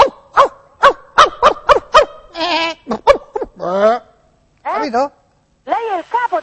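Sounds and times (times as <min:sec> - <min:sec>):
person imitating a barking dog: 0:00.0 - 0:04.0
speech: 0:03.7 - 0:04.0, 0:04.9 - 0:05.2.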